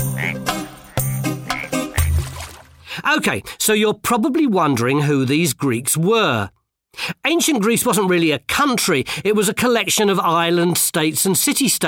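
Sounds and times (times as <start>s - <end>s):
frogs croaking on a pond: 0.0s - 2.6s
speech: 3.1s - 11.8s.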